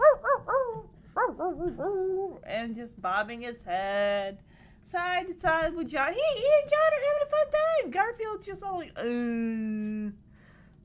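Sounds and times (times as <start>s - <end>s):
cartoon dog barking along to a song: 0.0s - 2.4s
speech: 1.5s - 10.2s.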